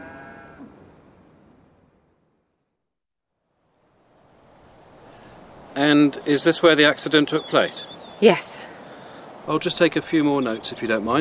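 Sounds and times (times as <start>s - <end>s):
cow mooing: 0.0s - 0.8s
steady rush of wind-like noise: 3.7s - 11.1s
speech: 5.8s - 8.7s, 9.5s - 11.1s.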